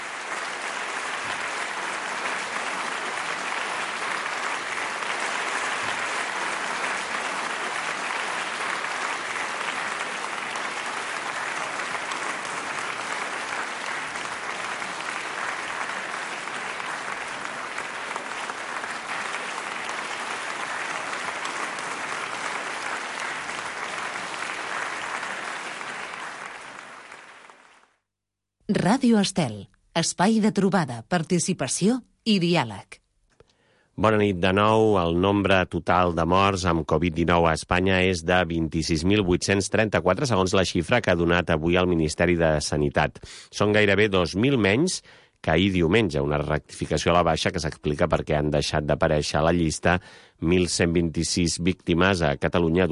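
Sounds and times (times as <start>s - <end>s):
crowd applause in tribute to taxi drivers: 0.0s - 28.0s
speech: 28.7s - 33.0s, 34.0s - 52.9s.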